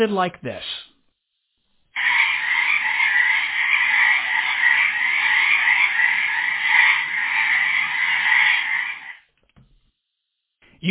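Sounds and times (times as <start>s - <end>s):
speech: 0.0s - 0.7s
chorus of frogs croaking at night in a swamp: 1.9s - 9.3s.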